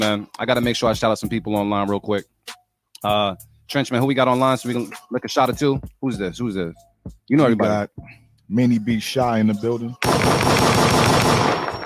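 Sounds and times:
speech: 0.0 - 10.7
automatic weapon gunfire sound effects: 10.0 - 11.8.

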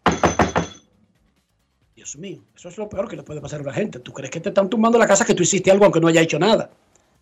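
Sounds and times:
knocking on a house door in Orlando: 0.0 - 0.8
speech: 2.1 - 6.8.

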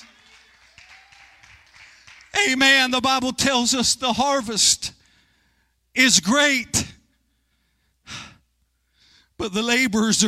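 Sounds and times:
audience clapping hands during an evening sermon: 0.0 - 2.6
speech: 2.4 - 5.0, 6.0 - 6.9, 9.4 - 10.2.

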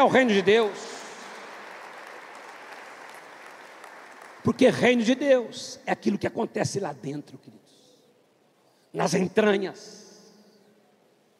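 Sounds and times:
speech: 0.0 - 0.9, 4.4 - 7.7, 8.9 - 10.0
crowd clapping: 0.0 - 5.1.

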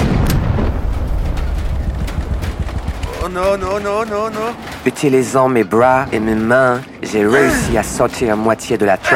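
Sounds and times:
airplane exploding with crackling bursts: 0.0 - 4.8
speech: 3.3 - 9.1.

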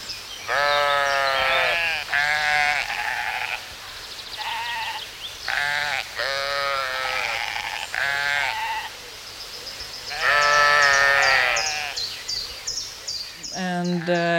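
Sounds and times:
sheep bleating: 0.5 - 3.8, 4.4 - 8.9, 10.1 - 12.1.

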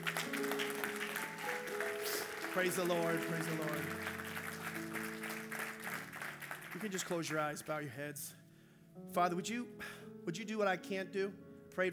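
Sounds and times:
sustained organ chords: 0.0 - 7.4
crowd applauding: 0.0 - 7.7
speech: 2.6 - 4.2, 6.8 - 8.4, 9.0 - 11.9.

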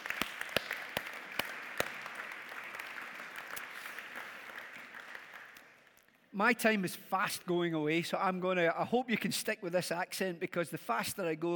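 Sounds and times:
audience applauding: 0.0 - 6.0
speech: 6.4 - 11.5.

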